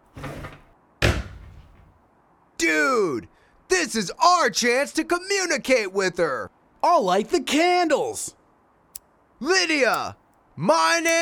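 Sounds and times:
doors or windows slamming shut: 0:00.0 - 0:02.0
speech: 0:02.6 - 0:08.4, 0:09.4 - 0:11.1.

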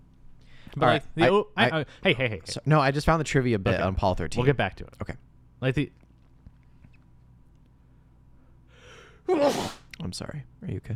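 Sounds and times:
speech: 0:00.8 - 0:06.0, 0:09.3 - 0:10.9
single loud sneeze: 0:09.3 - 0:09.9.

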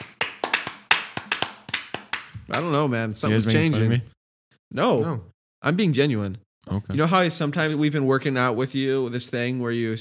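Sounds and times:
brisk hand clapping: 0:00.0 - 0:02.8
speech: 0:02.5 - 0:09.9.

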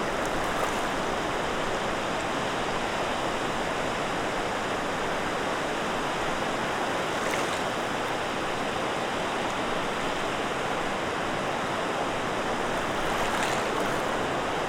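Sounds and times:
waves crashing on a rocky lake shoreline in blustery weather: 0:00.0 - 0:14.6.

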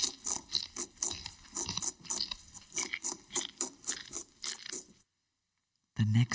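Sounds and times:
crunchy munching on leafy garden plants: 0:00.0 - 0:05.0
speech: 0:06.1 - 0:06.3.

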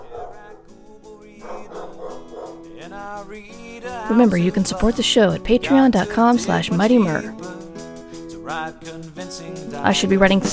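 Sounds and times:
dogs barking and yipping: 0:00.0 - 0:02.8, 0:06.2 - 0:07.3
speech: 0:02.9 - 0:07.6, 0:08.8 - 0:10.5.

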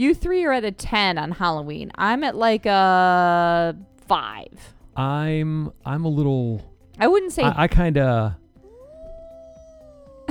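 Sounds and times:
speech: 0:00.0 - 0:08.4
person imitating a wolf howl: 0:08.6 - 0:10.2.

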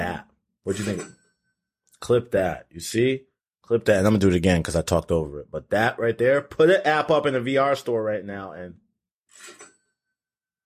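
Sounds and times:
speech: 0:00.1 - 0:01.2, 0:02.0 - 0:08.8
cash register ka-ching with metallic clatter and ringing chime: 0:09.3 - 0:09.8.

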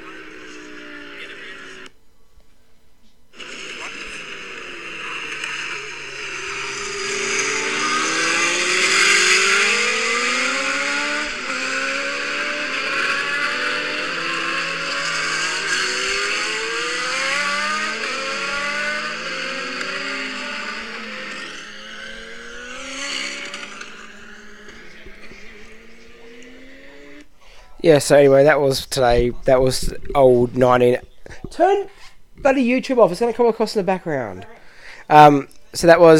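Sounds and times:
Formula One cars from the 1980s to 1990s revving in Adelaide: 0:00.0 - 0:02.0, 0:03.4 - 0:27.3
busy outdoor roar: 0:00.0 - 0:02.0, 0:03.3 - 0:27.3
speech: 0:27.8 - 0:36.1.

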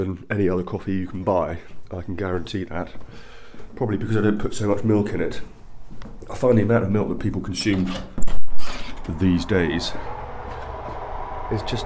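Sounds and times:
speech: 0:00.0 - 0:05.6, 0:06.3 - 0:08.1, 0:09.1 - 0:10.1, 0:11.5 - 0:11.8
door latch and hinges clunking and creaking as a door is opened: 0:07.6 - 0:09.0.

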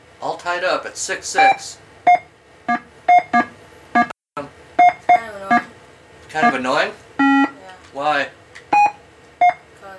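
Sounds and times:
speech: 0:00.4 - 0:01.9, 0:06.3 - 0:07.0, 0:07.9 - 0:08.4
short bright electronic beeps of a primitive video game: 0:01.4 - 0:04.1, 0:04.8 - 0:05.7, 0:06.4 - 0:06.6, 0:07.2 - 0:07.6, 0:08.8 - 0:09.6.

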